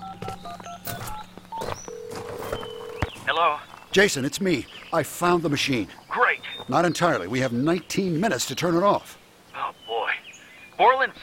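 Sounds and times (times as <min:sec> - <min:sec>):
cell phone dialing tones and electronic key beeps: 0:00.0 - 0:03.1
speech: 0:03.4 - 0:06.0, 0:06.7 - 0:09.2, 0:10.8 - 0:11.2.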